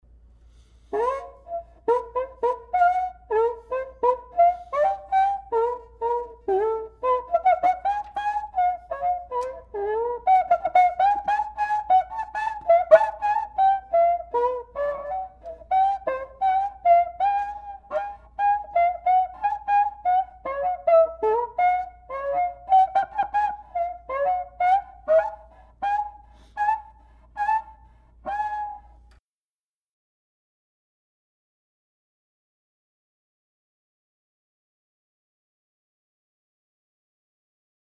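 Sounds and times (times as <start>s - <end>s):
cuica with timbral intonation: 0.9s - 27.7s.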